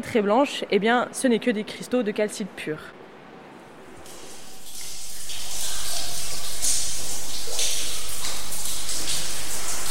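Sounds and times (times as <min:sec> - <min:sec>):
speech: 0:00.0 - 0:03.0
faint water drips from a cave ceiling: 0:04.0 - 0:09.8
small underground river rushing and trickling in a cave: 0:04.0 - 0:09.8.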